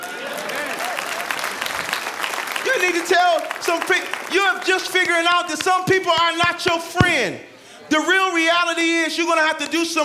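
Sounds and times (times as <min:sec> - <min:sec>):
audience applause: 0:00.0 - 0:07.4
speech: 0:02.8 - 0:10.0.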